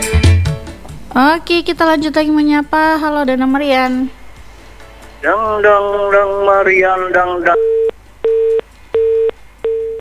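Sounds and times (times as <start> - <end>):
speech: 1.2 - 4.2, 5.2 - 7.8
telephone busy tone after a dropped call: 7.5 - 9.9.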